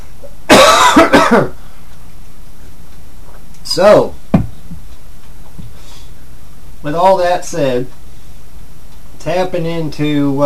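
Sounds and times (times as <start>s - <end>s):
coughing from a tickle in the throat: 0.3s - 1.6s
throat clearing from a tickle in the throat: 0.5s - 1.6s
speech: 1.3s - 1.6s, 3.8s - 4.2s, 6.8s - 8.0s, 9.2s - 10.4s.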